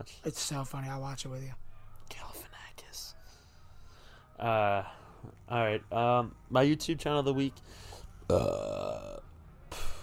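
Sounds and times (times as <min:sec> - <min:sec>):
speech: 0:00.0 - 0:02.3, 0:04.4 - 0:09.3
loud drawn-out burp with wavering pitch: 0:08.3 - 0:09.2.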